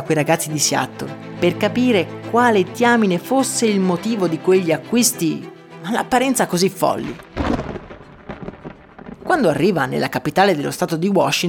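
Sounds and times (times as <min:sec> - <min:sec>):
speech: 0:00.0 - 0:07.3, 0:09.4 - 0:11.4
heavy gusts of wind from the Pacific: 0:07.1 - 0:09.7
steady rain at a harbour: 0:07.2 - 0:09.4.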